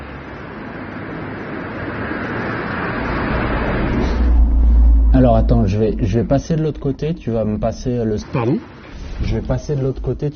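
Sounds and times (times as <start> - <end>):
car passing by with engine and tyre rumble: 0.0 - 6.7
speech: 5.2 - 10.3.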